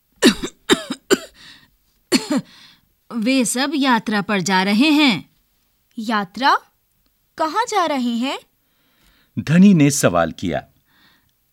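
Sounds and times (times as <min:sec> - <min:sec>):
woman coughing in a smoke-filled room: 0:00.2 - 0:01.4, 0:02.1 - 0:02.5
speech: 0:02.3 - 0:05.3, 0:06.0 - 0:06.7, 0:07.4 - 0:08.5, 0:09.4 - 0:10.7.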